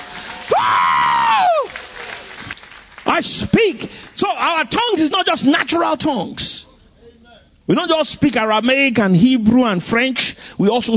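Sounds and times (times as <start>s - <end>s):
audience clapping and cheering: 0.0s - 4.2s
one voice's long high whoop: 0.5s - 1.8s
speech: 3.2s - 6.7s, 7.7s - 10.9s.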